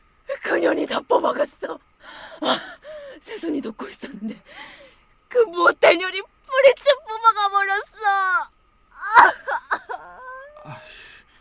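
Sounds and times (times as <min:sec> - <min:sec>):
speech: 0:00.7 - 0:09.6
person crying and whimpering: 0:09.0 - 0:10.9.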